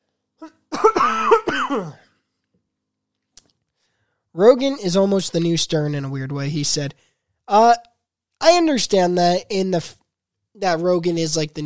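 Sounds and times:
speech: 0.4s - 2.0s, 4.4s - 10.0s, 10.6s - 11.6s
person coughing with rough voiced hacks: 0.4s - 2.1s.

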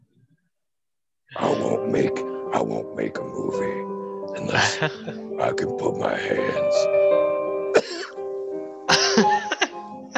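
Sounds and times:
speech: 1.3s - 7.2s
steady tonal background: 1.3s - 10.1s
laughter: 4.4s - 5.2s, 8.9s - 10.1s
person coughing: 7.8s - 8.2s.

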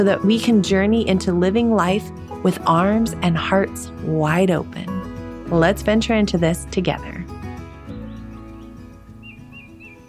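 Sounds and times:
speech: 0.0s - 4.9s, 5.5s - 7.2s
birds chirping faintly outdoors: 2.5s - 10.0s.

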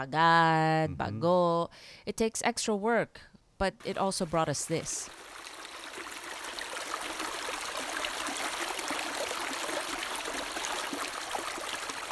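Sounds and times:
speech: 0.0s - 5.2s
river water flowing with rushing and babbling hiss: 3.9s - 12.1s.

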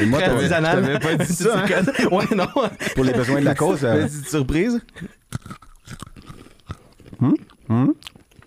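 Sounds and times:
laughter: 0.0s - 5.2s
speech: 0.0s - 6.1s, 7.2s - 8.1s
mouth noises: 4.8s - 8.4s
person chewing dry Purina dog kibble in a tasting: 5.3s - 8.4s.

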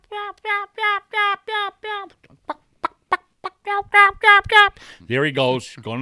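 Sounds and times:
speech: 0.2s - 1.0s, 3.8s - 6.0s
hen turkey yelping: 2.4s - 4.1s.

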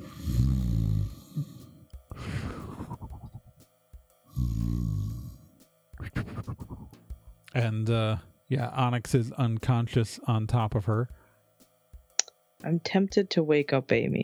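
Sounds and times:
breathy exhale: 0.0s - 3.5s, 4.3s - 7.0s
voice imitating loud exaggerated snoring: 0.0s - 3.5s, 4.3s - 7.0s
speech: 7.6s - 11.2s, 12.6s - 14.2s.

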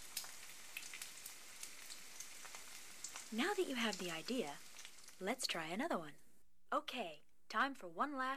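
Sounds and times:
bacon sizzling in a pan: 0.0s - 5.5s
speech: 3.3s - 8.3s.

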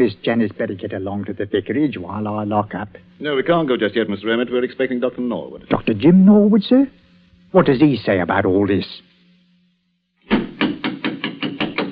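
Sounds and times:
speech: 0.0s - 9.1s
knocking on a wooden vestry door: 10.3s - 11.9s.

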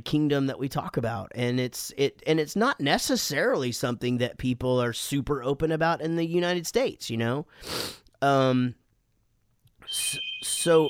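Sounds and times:
speech: 0.0s - 8.8s, 9.9s - 10.8s
home phone ringing with shrill electronic tone: 9.9s - 10.8s.

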